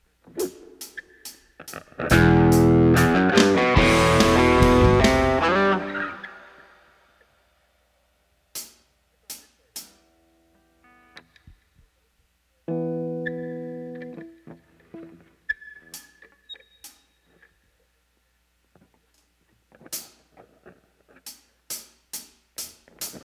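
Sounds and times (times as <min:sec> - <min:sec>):
mix of expensive drum samples: 0:00.3 - 0:06.1.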